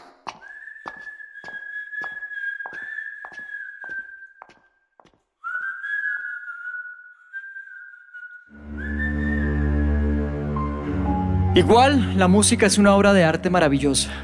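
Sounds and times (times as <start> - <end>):
footsteps thudding in clinic corridors: 0.0 - 5.3
patient whistling a slow wavering tune in clinic corridors: 0.4 - 4.8, 5.4 - 10.4
speech: 11.6 - 14.2.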